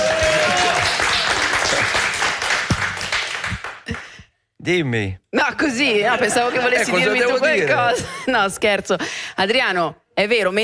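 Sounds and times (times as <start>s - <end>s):
crowd clapping: 0.0s - 4.3s, 7.3s - 8.0s
speech: 4.7s - 10.6s.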